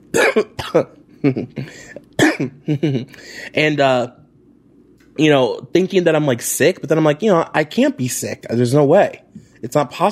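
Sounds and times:
harsh hacking coughs: 0.1s - 3.2s
speech: 0.1s - 4.2s, 5.2s - 10.1s.

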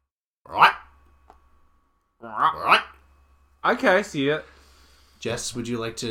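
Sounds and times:
voice imitating a growling bark-croak creature call: 0.5s - 0.8s, 2.2s - 3.0s
speech: 3.6s - 4.5s, 5.2s - 6.1s.

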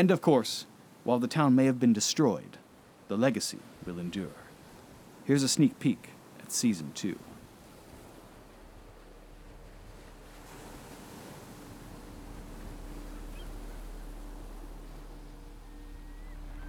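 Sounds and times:
speech: 0.0s - 4.4s, 5.3s - 7.3s
waves washing onto a stony Pacific shore: 0.0s - 16.6s
wind blowing across the microphone: 7.3s - 16.6s.

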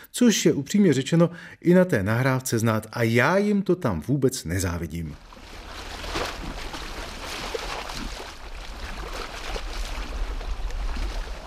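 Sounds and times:
speech: 0.1s - 5.5s
choppy water lapping against a shore or boat on a windy pond: 5.2s - 11.4s
steady low wind rumble: 5.2s - 11.4s.

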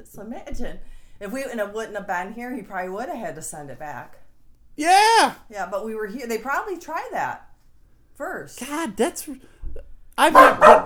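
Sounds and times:
speech: 0.0s - 4.2s, 4.8s - 7.5s, 8.2s - 9.6s, 10.2s - 10.8s
pet dog barking loudly: 10.2s - 10.8s.

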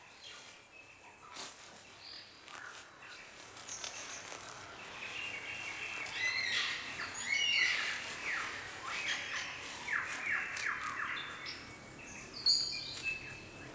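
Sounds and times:
forest ambience: 0.0s - 13.7s
superb lyrebird singing in South Australia: 0.0s - 13.7s.

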